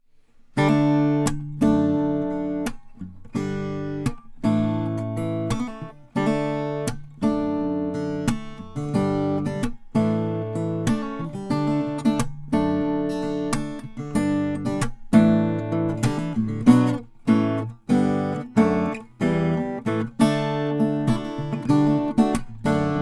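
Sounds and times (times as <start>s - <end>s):
2021 Lowden S03 acoustic guitar of Indian rosewood: 0.1s - 22.9s.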